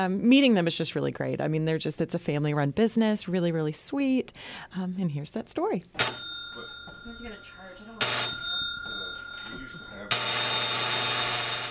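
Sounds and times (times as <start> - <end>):
speech: 0.0 - 8.4
shop door buzzer: 8.0 - 8.8, 9.4 - 11.6.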